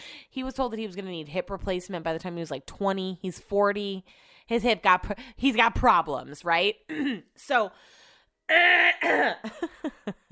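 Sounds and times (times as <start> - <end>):
speech: 0.4 - 10.3
man clearing throat: 8.7 - 9.6.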